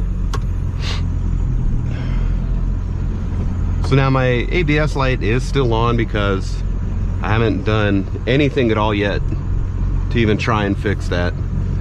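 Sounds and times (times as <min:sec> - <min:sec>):
pickup truck with tuned Power Stroke engine rumbling: 0:00.0 - 0:11.8
brief hiss of air: 0:00.7 - 0:01.2
speech: 0:03.9 - 0:09.4, 0:10.1 - 0:11.4.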